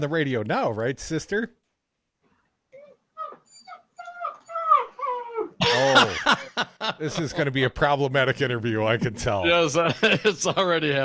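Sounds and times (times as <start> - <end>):
speech: 0.0 - 1.6, 5.8 - 11.0
dog whimpering: 2.7 - 5.6
laughter: 5.6 - 7.7, 9.5 - 11.0.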